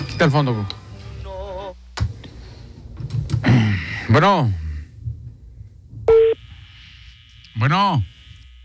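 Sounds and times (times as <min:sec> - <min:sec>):
speech: 0:00.2 - 0:00.8, 0:04.1 - 0:04.6, 0:07.7 - 0:08.1
electronic telephone call tones on an unanswered call: 0:06.1 - 0:06.4.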